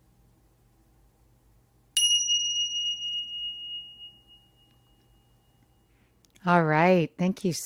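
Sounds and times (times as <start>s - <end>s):
meditation bell ringing: 2.0s - 6.0s
speech: 6.4s - 7.6s.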